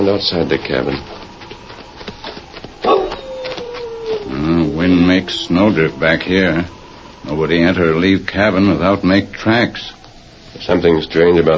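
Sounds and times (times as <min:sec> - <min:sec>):
speech: 0:00.0 - 0:01.2, 0:04.3 - 0:10.0, 0:10.6 - 0:11.5
soft hiss: 0:00.0 - 0:11.5
dog barking: 0:02.8 - 0:03.6
dog whimpering: 0:02.8 - 0:06.6.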